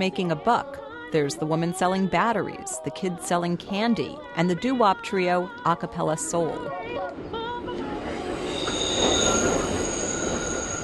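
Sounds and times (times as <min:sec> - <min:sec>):
speech: 0:00.0 - 0:07.4
subway train rumbling along the tracks: 0:06.7 - 0:10.8
high-pitched subway train wheel squeals: 0:08.2 - 0:10.8.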